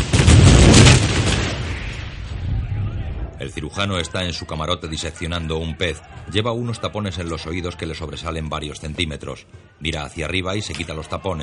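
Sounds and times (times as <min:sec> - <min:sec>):
ship starboard battery cannons firing: 0:00.0 - 0:03.4
speech: 0:03.4 - 0:11.4.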